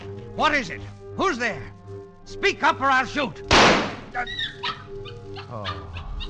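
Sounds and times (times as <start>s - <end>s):
speech: 0.4s - 4.8s, 5.5s - 6.2s
dog whimpering and yipping in a room: 4.2s - 6.2s.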